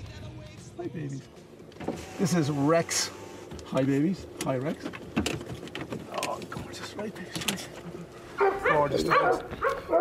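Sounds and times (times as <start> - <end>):
speech: 0.8 - 5.1, 7.0 - 10.0
rescued dog barking: 8.4 - 10.0.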